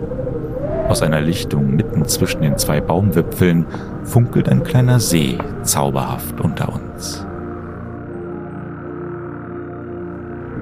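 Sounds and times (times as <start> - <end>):
deeper throatier toad calls: 0.0 - 8.1
chorus of frogs croaking at a small lake in a forest clearing: 0.0 - 10.6
speech: 0.9 - 7.3.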